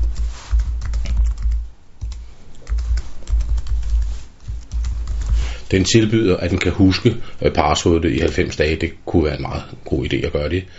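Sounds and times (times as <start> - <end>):
computer keyboard typing of a username and password: 0.0 - 5.6
speech: 5.7 - 10.7.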